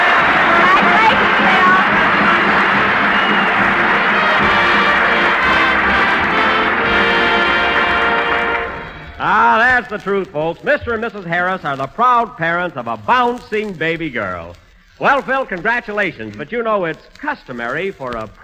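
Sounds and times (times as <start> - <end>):
studio audience applause: 0.0 - 10.1
studio audience crowd hubbub: 0.0 - 11.2
speech: 9.8 - 18.4.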